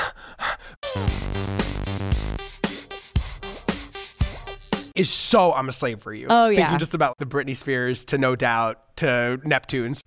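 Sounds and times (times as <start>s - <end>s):
female singer panting rhythmically in a pop track: 0.0s - 4.8s
pop track with bright synth chords and punchy rhythm: 0.8s - 5.0s
speech: 1.0s - 2.5s, 5.0s - 10.0s.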